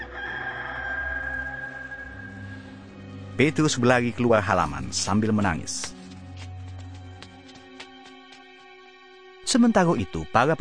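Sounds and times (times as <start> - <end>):
rooster crowing: 0.0 - 2.8
speech: 3.4 - 6.0, 9.5 - 10.5.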